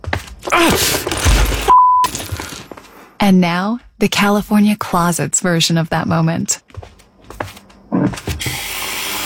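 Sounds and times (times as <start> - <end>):
toys crunching and clattering underfoot: 0.2 - 3.0
parent groaning in pain: 0.5 - 1.1
speech: 0.6 - 1.1, 3.2 - 7.0, 8.0 - 8.5
steady electronic beep of a squashed toy: 1.7 - 2.1.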